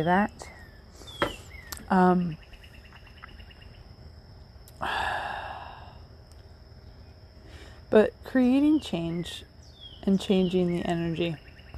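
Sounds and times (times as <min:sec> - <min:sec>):
speech: 0:00.0 - 0:00.6, 0:01.9 - 0:02.5, 0:04.8 - 0:05.0, 0:07.9 - 0:11.4
birds chirping outdoors on a porch: 0:00.0 - 0:04.5, 0:06.5 - 0:07.8, 0:08.4 - 0:11.7.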